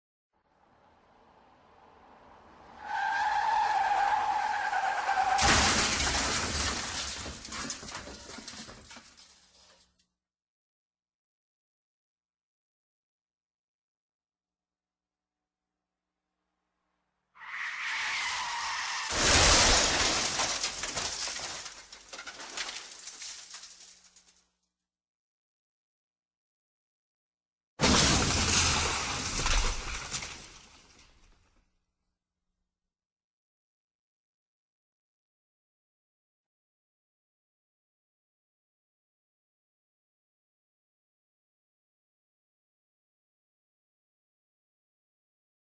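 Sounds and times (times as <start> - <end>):
car crash sound effect: 0.9 - 9.8, 17.6 - 24.4, 27.8 - 31.4.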